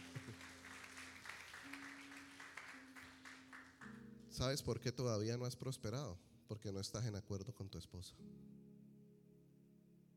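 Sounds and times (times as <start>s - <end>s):
crowd applause: 0.0s - 3.9s
speech: 4.4s - 8.5s.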